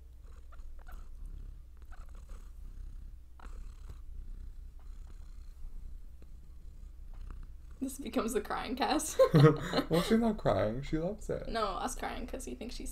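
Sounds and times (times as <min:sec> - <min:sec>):
cat purring: 0:00.0 - 0:12.8
speech: 0:07.8 - 0:12.8
laughter: 0:09.1 - 0:10.7.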